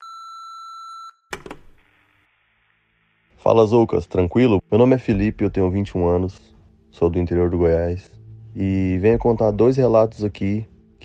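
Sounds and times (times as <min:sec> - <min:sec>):
voicemail message beep: 0:00.0 - 0:01.3
speech: 0:03.4 - 0:11.0.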